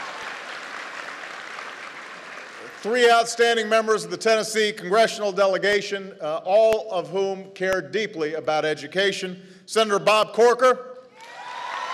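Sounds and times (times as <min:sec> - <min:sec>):
audience applause for a guest at a formal gathering: 0:00.0 - 0:02.8, 0:11.2 - 0:11.9
speech: 0:02.8 - 0:10.9.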